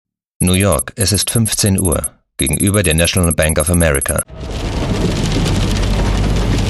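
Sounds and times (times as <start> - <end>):
speech: 0.4 - 5.1
heavy rain pattering on the roof of a blue Porsche Cayenne Turbo: 4.3 - 6.6.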